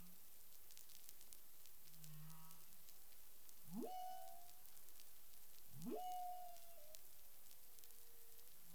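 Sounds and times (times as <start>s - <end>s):
underwater crackle: 0.0s - 8.7s
humpback whale calls: 3.7s - 4.8s, 5.8s - 7.0s.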